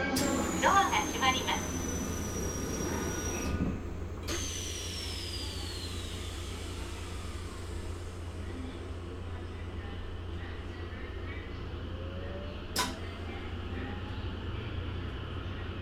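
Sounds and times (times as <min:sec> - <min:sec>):
E257-2000 electric train on the Tokaido line: 0:00.1 - 0:15.8.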